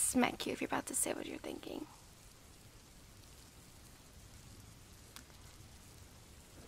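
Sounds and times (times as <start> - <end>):
steady rain pouring: 0.0 - 6.6
speech: 0.1 - 2.0.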